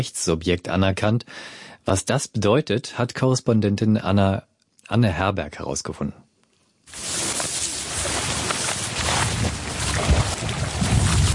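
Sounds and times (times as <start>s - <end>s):
speech: 0.0s - 6.2s
wind sweeping through golden-yellow reeds by Lake Titicaca: 6.9s - 11.3s.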